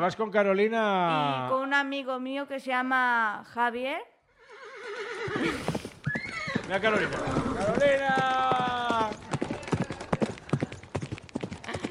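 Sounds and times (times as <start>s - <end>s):
speech: 0.0s - 4.1s, 6.7s - 8.6s
horse hooves clip-clopping: 5.3s - 11.9s.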